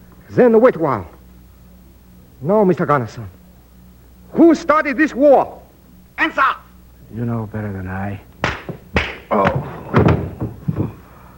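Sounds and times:
speech: 0:00.3 - 0:01.2, 0:02.4 - 0:03.4, 0:04.3 - 0:05.6, 0:06.2 - 0:08.3, 0:09.3 - 0:09.8
heavy dull thuds of a man knocked off a bat: 0:08.4 - 0:11.0.

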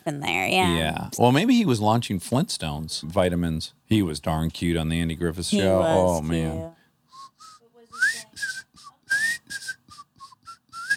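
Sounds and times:
speech: 0:00.0 - 0:07.4
person whistling a bright bouncy tune: 0:07.1 - 0:10.9.

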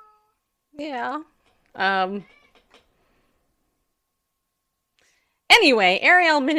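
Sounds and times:
speech: 0:00.8 - 0:02.4, 0:05.5 - 0:06.5
cat meowing loudly: 0:02.1 - 0:02.8.

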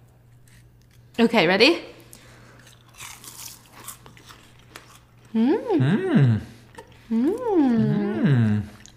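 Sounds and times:
speech: 0:01.2 - 0:01.9, 0:05.3 - 0:06.5, 0:07.1 - 0:08.5
crunching bites of mini croissant cereal: 0:02.6 - 0:05.3
drawn-out expressive wordless vocal sounds: 0:05.3 - 0:08.9.

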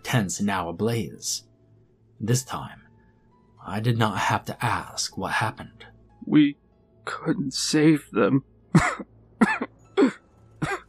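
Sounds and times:
speech: 0:00.1 - 0:01.5, 0:02.2 - 0:02.8, 0:03.6 - 0:09.1
badly wounded man coughing out blood: 0:08.7 - 0:10.8.

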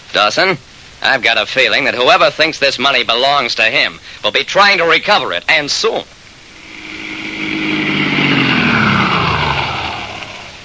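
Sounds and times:
speech: 0:00.1 - 0:06.2
car engine driving past and revving: 0:06.4 - 0:10.6.

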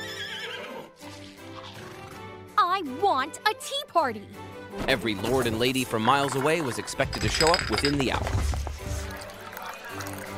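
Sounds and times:
pony neighing in a bedroom: 0:00.0 - 0:02.3
speech: 0:02.8 - 0:08.6.

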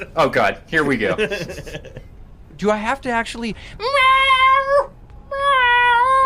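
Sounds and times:
speech: 0:00.0 - 0:04.2
laughter: 0:00.9 - 0:02.1
person imitating a lost kitten's meowing call: 0:03.8 - 0:06.2.

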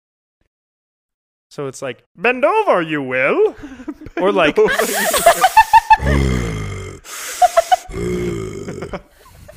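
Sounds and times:
speech: 0:01.5 - 0:06.5
laughter: 0:03.5 - 0:09.5
voice imitating heavy mechanical respirator breathing of a masked villain: 0:06.0 - 0:09.5.

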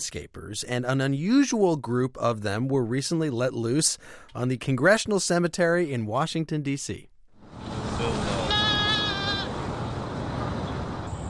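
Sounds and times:
speech: 0:00.0 - 0:07.8
steady outdoor hum: 0:07.4 - 0:11.2
goats bleating: 0:08.0 - 0:09.6.

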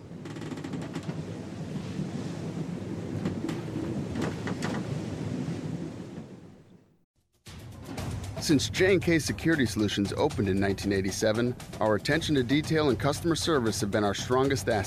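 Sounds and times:
rushing wind off the coast of Greece: 0:00.0 - 0:07.0
deep rumbling thunder off the coast of Greece: 0:00.9 - 0:06.8
speech: 0:08.5 - 0:14.8.

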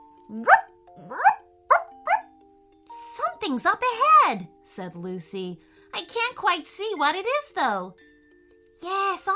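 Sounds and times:
speech: 0:00.3 - 0:00.6, 0:03.4 - 0:08.1, 0:08.8 - 0:09.3
dog barking and yelping: 0:00.4 - 0:02.3.

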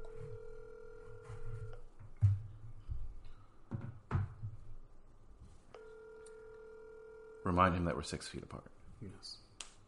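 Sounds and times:
two-tone dial tone of a telephone call on speakerphone: 0:00.0 - 0:01.8, 0:05.8 - 0:07.4
speech: 0:07.5 - 0:09.4.

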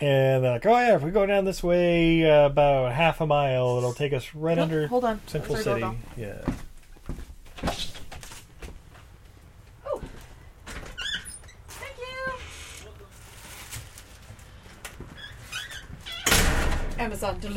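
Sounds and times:
speech: 0:00.0 - 0:07.8, 0:17.1 - 0:17.5
door creaking open: 0:10.6 - 0:13.8, 0:15.0 - 0:17.1.

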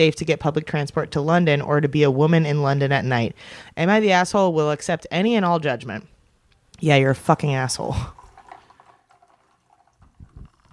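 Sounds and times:
speech: 0:00.0 - 0:06.1, 0:06.8 - 0:08.2
liquid pouring into a glass: 0:07.8 - 0:10.7.

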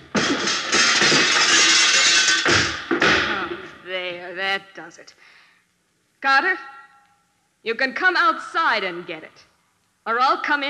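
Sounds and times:
chair smashing through a glass door panel: 0:00.0 - 0:03.5
shattering and tinkling glass: 0:00.2 - 0:02.8
speech: 0:04.8 - 0:05.4, 0:06.2 - 0:06.7, 0:07.6 - 0:10.6.

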